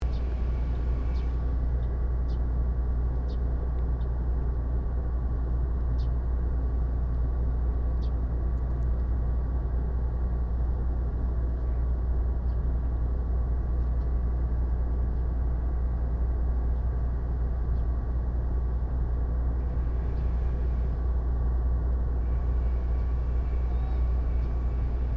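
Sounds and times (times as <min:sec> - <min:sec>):
industrial complex ambience: 0:00.0 - 0:25.1.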